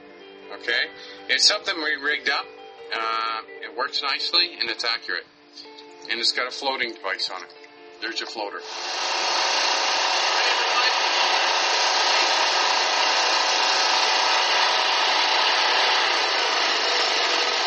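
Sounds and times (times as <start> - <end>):
speech: 0.6 - 9.6
generator engine drone: 8.6 - 17.6.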